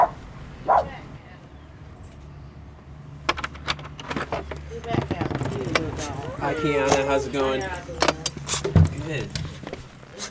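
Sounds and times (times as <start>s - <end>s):
light clattering and jangling noises: 1.9s - 9.6s
speech: 4.7s - 8.0s, 9.1s - 9.4s
small lap dog barking and yipping: 6.0s - 7.1s.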